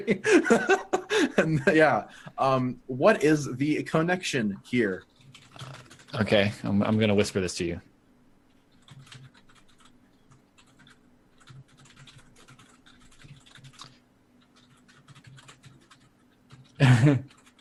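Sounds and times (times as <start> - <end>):
laughter: 0.0 - 2.0, 16.8 - 17.2
speech: 0.0 - 7.9, 17.0 - 17.3
typing on a computer keyboard: 5.1 - 7.2, 8.7 - 17.6.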